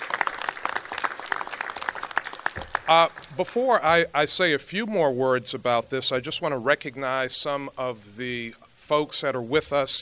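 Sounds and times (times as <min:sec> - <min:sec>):
audience applauding: 0:00.0 - 0:03.8
speech: 0:02.9 - 0:10.0.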